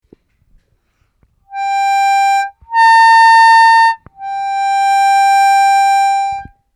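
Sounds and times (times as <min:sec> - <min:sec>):
harmonica overbends: 0:01.5 - 0:06.5.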